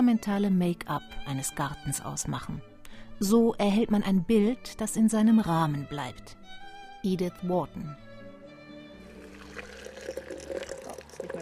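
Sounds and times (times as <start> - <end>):
speech: 0.0 - 6.4, 7.0 - 8.1
water pouring from a plastic canister into a kettle: 9.1 - 11.3.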